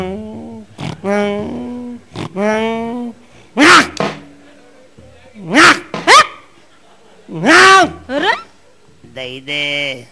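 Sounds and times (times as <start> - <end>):
man imitating a dog with bark-like yelps and whiny sounds: 0.0 - 4.2, 5.4 - 6.5, 7.3 - 8.5.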